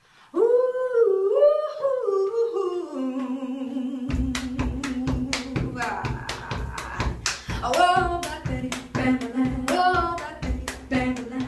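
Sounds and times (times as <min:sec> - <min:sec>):
person singing: 0:00.3 - 0:11.4
rhythmic pounding on a shower wall: 0:04.1 - 0:11.4
sharp hand claps: 0:04.1 - 0:11.4.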